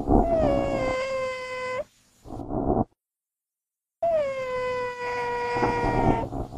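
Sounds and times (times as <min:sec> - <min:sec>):
common genet uttering long moaning wails: 0:00.1 - 0:01.8, 0:04.1 - 0:06.5.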